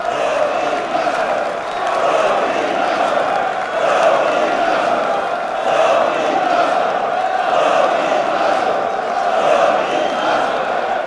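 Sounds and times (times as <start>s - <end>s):
crowd chanting at stadium: 0.0s - 11.0s.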